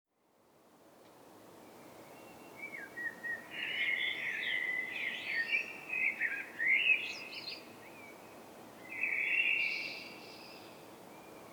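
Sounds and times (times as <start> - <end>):
common blackbird Turdus merula song: 1.7 - 11.5.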